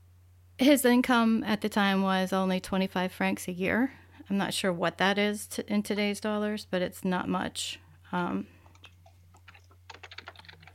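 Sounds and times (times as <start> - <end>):
speech: 0.6 - 8.5
computer keyboard typing with light plastic clicks: 8.6 - 10.7.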